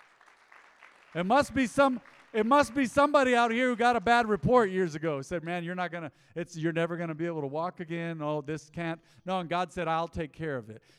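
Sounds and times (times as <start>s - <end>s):
congregation applauding: 0.0s - 4.7s
speech: 1.1s - 10.9s.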